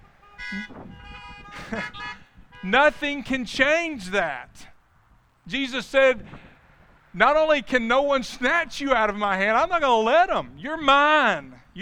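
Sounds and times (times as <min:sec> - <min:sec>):
car horns honking: 0:00.0 - 0:04.1
speech: 0:00.5 - 0:04.7, 0:05.5 - 0:06.4, 0:07.1 - 0:11.7.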